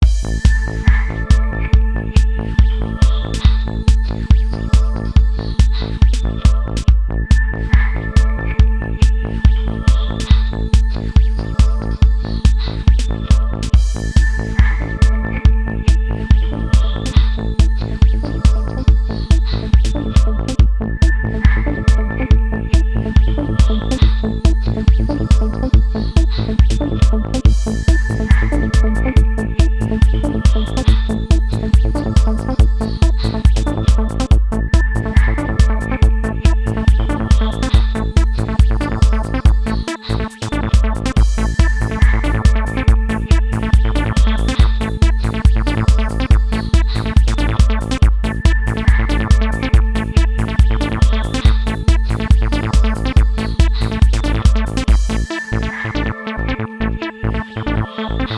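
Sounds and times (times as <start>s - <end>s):
trance synth music: 0.0s - 58.3s.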